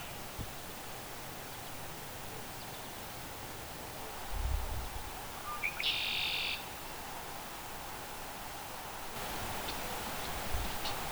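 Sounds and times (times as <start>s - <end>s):
steady background hiss: 0.0s - 11.0s
red-winged blackbird singing at Bullough's Pond in Newton, Massachusetts, USA: 5.5s - 6.7s, 9.2s - 11.0s.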